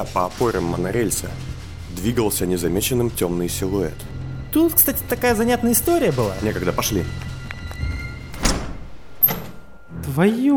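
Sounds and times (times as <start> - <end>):
speech: 0.0 - 7.3, 10.2 - 10.5
door thrown open: 8.3 - 9.9.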